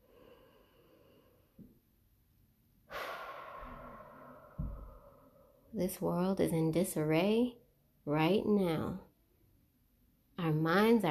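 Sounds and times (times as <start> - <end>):
slow deep breathing: 0.0 - 1.8, 2.8 - 5.8
speech: 5.8 - 9.1, 10.4 - 11.0.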